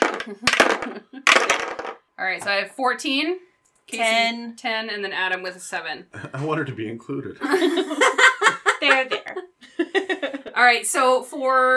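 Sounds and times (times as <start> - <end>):
dice clattering across a table: 0.0 - 2.0
speech: 0.2 - 11.7
laughter: 7.4 - 10.6.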